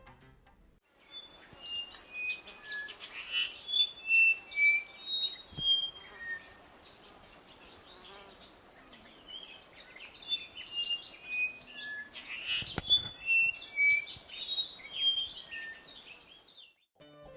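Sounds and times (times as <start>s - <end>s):
brown-throated wattle-eye calling with whistled notes: 1.1s - 6.5s, 10.2s - 16.0s.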